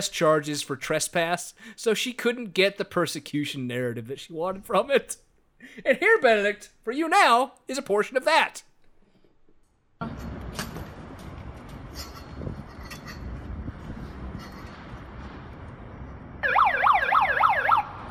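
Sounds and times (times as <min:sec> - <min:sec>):
speech: 0:00.0 - 0:08.7
small megaphone electronic siren wailing: 0:16.4 - 0:18.0.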